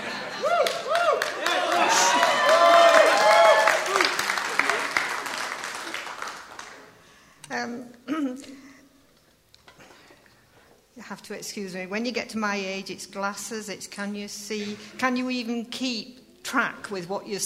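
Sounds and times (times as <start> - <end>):
audience applause: 0.0 - 7.0
audience whoops and cheers: 0.4 - 4.8
speech: 11.3 - 17.4.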